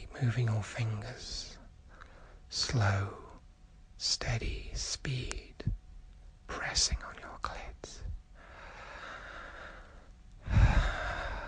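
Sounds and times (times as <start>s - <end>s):
speech: 0.2s - 1.6s, 2.5s - 3.2s, 4.0s - 5.8s, 6.5s - 8.2s
heavy breathy exhale: 8.4s - 11.4s.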